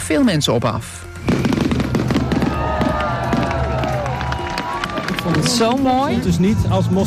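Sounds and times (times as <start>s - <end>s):
speech: 0.1s - 1.5s, 5.5s - 7.0s
fireworks display exploding with crackles, pops and whistles: 1.2s - 5.6s.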